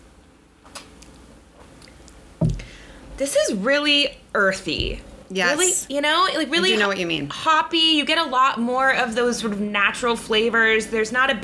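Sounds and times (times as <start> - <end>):
person sipping a drink while tasting it: 0.7 - 3.0
speech: 3.2 - 11.4.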